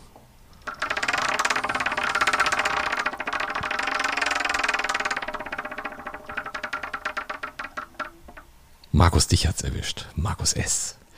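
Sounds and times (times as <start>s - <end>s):
prize wheel spinning with rattling clicks: 0.6s - 8.5s
speech: 9.0s - 11.0s.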